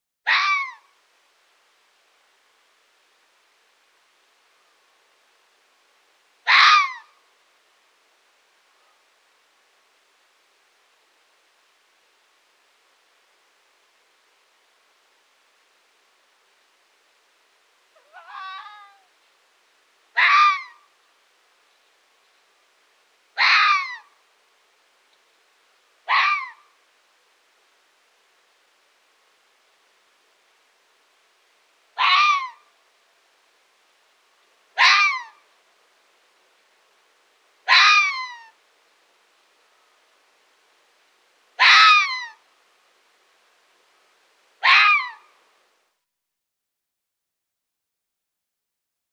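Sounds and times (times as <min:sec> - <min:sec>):
red fox calling in mating season: 0:00.3 - 0:00.9, 0:06.4 - 0:07.2, 0:17.9 - 0:19.1, 0:20.1 - 0:20.9, 0:23.4 - 0:24.2, 0:26.0 - 0:26.8, 0:32.0 - 0:32.7, 0:34.8 - 0:35.4, 0:37.6 - 0:38.6, 0:41.6 - 0:42.4, 0:44.6 - 0:45.3.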